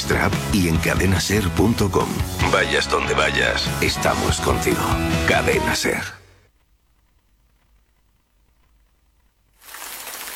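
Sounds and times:
speech: 0.1 - 6.2
steady rain: 9.6 - 10.3.

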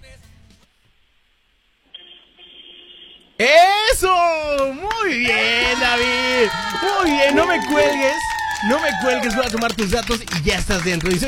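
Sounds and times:
car horn honking through a phone line: 1.9 - 3.4
speech: 3.4 - 11.2.

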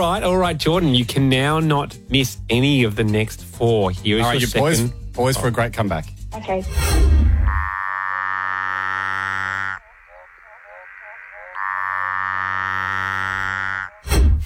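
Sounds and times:
speech: 0.0 - 7.2
Litoria tree frog calling: 7.3 - 14.1.

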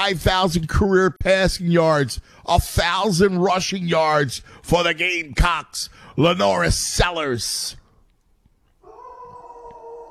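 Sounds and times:
faint noise: 0.0 - 10.0
speech: 0.1 - 7.8
dog howling: 8.8 - 10.0.

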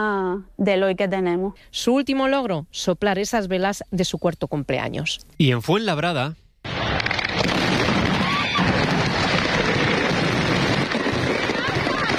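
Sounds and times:
speech: 0.0 - 6.4
fireworks rockets exploding at a Sunday fireworks show in Fuenlabrada: 6.6 - 12.1.

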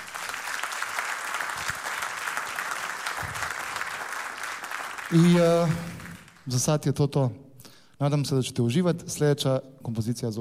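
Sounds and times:
applause for a tenor saxophone player after a musical piece: 0.0 - 6.6
speech: 5.1 - 7.4, 8.0 - 10.3.

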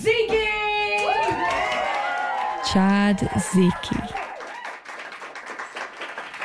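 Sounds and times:
audience applause and clapping: 1.0 - 6.4
speech: 2.7 - 4.2.

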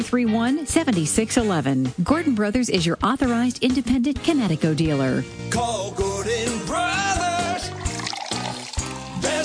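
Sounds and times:
speech: 0.0 - 6.8
water pouring from a tap into a filling vessel: 7.4 - 9.3.

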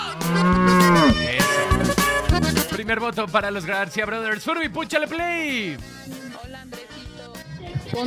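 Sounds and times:
cow mooing and bellowing: 0.1 - 1.8
speech: 2.9 - 6.3.

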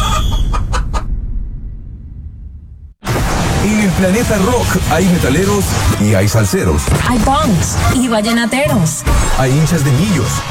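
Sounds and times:
rooster crowing: 0.0 - 1.0
low rumble: 0.4 - 6.0
speech: 3.7 - 10.4.

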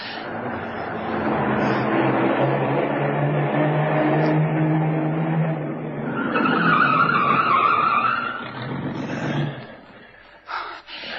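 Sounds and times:
car tires screeching as the car skids to a halt: 0.0 - 10.2
car engine roaring: 0.0 - 10.3.

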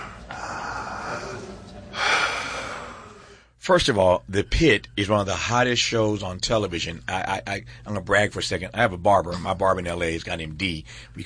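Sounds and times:
person drawing a deep breath: 0.0 - 3.6
speech: 3.7 - 11.2.

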